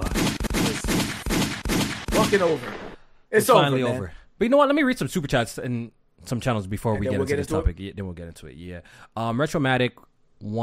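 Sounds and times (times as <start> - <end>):
dense loud barrage of gunfire: 0.0 - 3.0
speech: 2.3 - 10.6.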